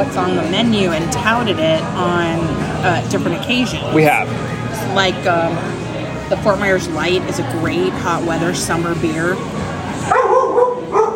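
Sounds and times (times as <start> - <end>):
speech: 0.0 - 5.7, 6.3 - 10.2
dog giving drawn-out whiny yelping barks: 10.1 - 11.1.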